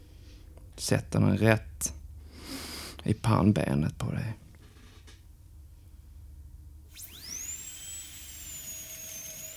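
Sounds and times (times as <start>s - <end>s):
speech: 0.8s - 2.0s, 3.0s - 4.4s
electric drill whirring: 6.9s - 9.5s.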